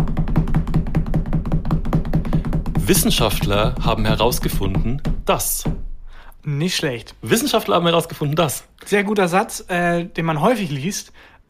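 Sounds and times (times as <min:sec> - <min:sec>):
fast knocking on a surface: 0:00.0 - 0:05.9
speech: 0:02.9 - 0:05.8, 0:06.4 - 0:11.4.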